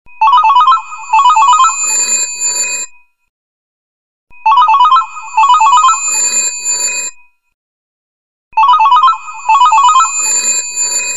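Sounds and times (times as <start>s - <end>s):
mixed phone ringtone: 0.2s - 3.2s, 4.4s - 7.4s, 8.6s - 11.1s.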